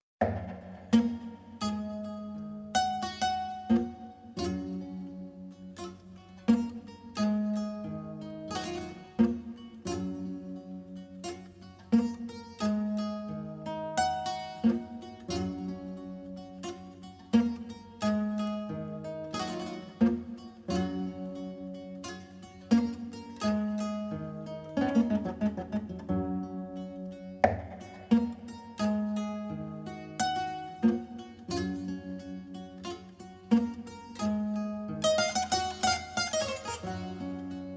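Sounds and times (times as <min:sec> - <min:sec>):
kora playing a piece: 0:00.2 - 0:37.7.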